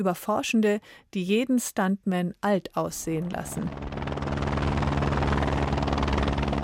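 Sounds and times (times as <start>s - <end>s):
speech: 0.0s - 4.0s
helicopter rotor chopping approaching mountain summit: 3.2s - 6.6s.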